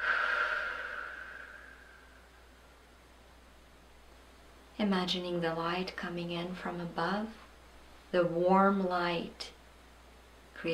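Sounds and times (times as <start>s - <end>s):
soft breathing during a guided relaxation exercise: 0.0s - 2.7s
speech: 4.8s - 7.4s, 8.1s - 9.6s, 10.6s - 10.7s.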